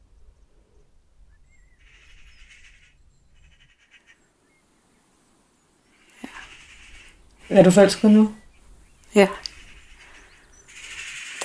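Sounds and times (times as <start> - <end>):
quiet hiss: 4.5 - 11.4
faint birds chirping and twittering outdoors: 5.8 - 11.4
speech: 7.5 - 8.4, 9.2 - 9.4.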